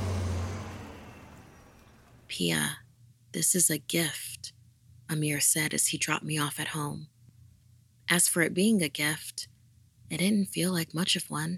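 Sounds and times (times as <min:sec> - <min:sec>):
express bus roaring past at speed: 0:00.0 - 0:02.3
speech: 0:02.3 - 0:07.2, 0:08.1 - 0:09.5, 0:10.1 - 0:11.5.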